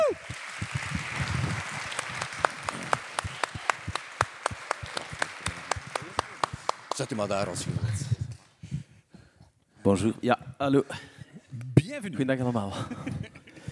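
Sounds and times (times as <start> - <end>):
audience applause welcoming a guest: 0.0 - 7.5
speech: 7.0 - 8.0, 9.8 - 11.1, 12.0 - 13.2.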